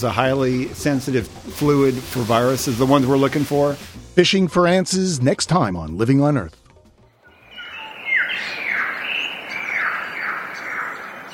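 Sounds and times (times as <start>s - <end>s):
speech: 0.0s - 6.6s
bird calls echoing in a deep gorge: 7.3s - 11.3s.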